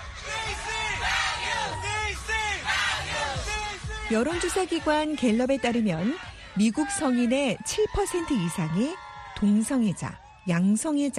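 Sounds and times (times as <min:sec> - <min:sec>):
parade crowd chanting slogans: 0:00.0 - 0:07.4
speech: 0:04.1 - 0:11.1.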